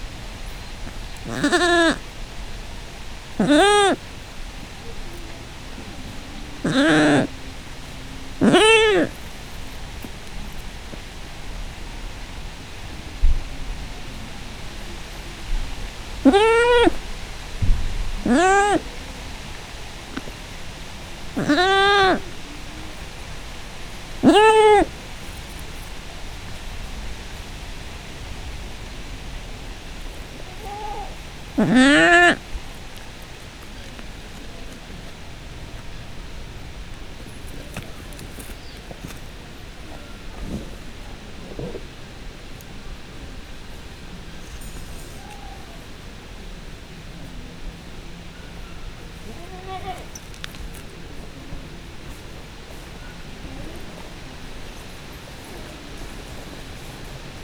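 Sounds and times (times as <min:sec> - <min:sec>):
close domestic goat kid in a farmyard: 0:00.0 - 0:57.4
wind in a farmyard: 0:00.0 - 0:57.4.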